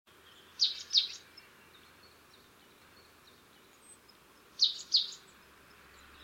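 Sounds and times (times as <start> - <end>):
marsh tit Poecile palustris call: 0.5 - 2.2, 2.8 - 5.4.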